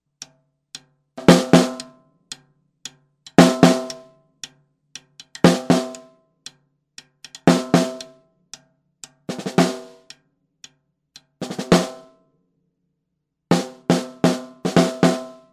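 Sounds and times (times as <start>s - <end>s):
snare drum top and bottom: 1.2s - 1.9s, 3.4s - 4.1s, 5.3s - 6.1s, 7.3s - 8.2s, 9.3s - 10.1s, 11.4s - 12.1s, 13.5s - 15.5s.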